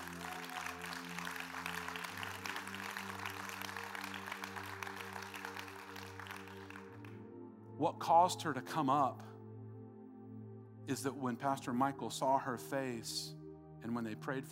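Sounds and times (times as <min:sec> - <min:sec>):
steady dense crowd clapping: 0:00.0 - 0:07.2
speech: 0:07.8 - 0:09.3, 0:10.9 - 0:14.4.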